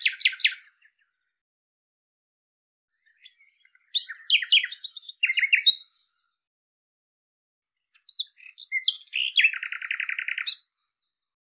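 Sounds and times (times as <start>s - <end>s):
common nightingale singing: 0.0s - 1.2s, 2.9s - 6.1s, 7.8s - 11.2s.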